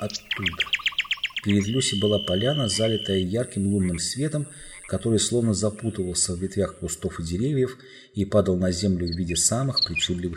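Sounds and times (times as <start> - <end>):
narrated speech: 0.0 - 0.7, 1.4 - 10.3
nightingale singing: 0.0 - 5.3, 9.1 - 10.3.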